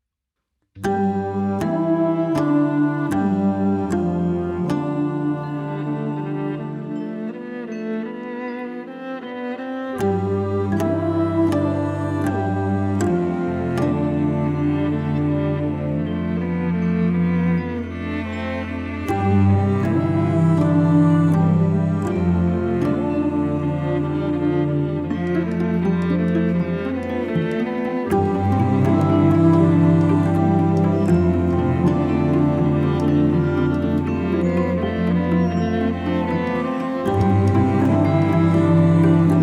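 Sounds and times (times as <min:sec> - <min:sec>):
cello: 0:00.8 - 0:39.4
clarinet: 0:00.8 - 0:39.4
qin: 0:00.8 - 0:39.4
viola: 0:00.8 - 0:39.4.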